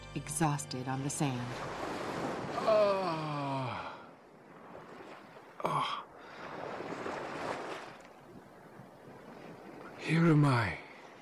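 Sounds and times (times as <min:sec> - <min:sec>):
speech: 0:00.2 - 0:02.0, 0:02.6 - 0:03.4, 0:10.1 - 0:10.8
ocean waves washing onto a beach: 0:01.4 - 0:11.2.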